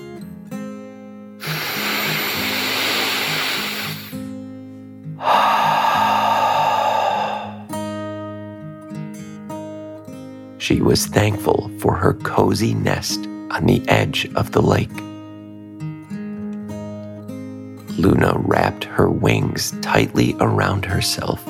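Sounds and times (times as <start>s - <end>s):
narrator imitating a deep dragon breath: 1.4s - 4.2s, 5.2s - 7.8s
soft music: 9.9s - 21.4s
speech: 10.7s - 15.1s, 18.0s - 21.4s.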